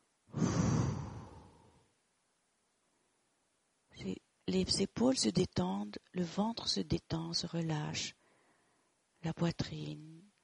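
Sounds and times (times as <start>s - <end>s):
slow exhaling breath: 0.3s - 1.9s
speech: 4.0s - 8.2s, 9.2s - 10.3s.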